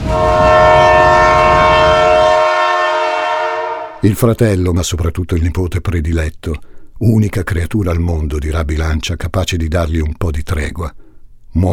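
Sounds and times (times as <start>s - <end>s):
train horn blaring: 0.0s - 4.2s
speech: 4.0s - 11.7s.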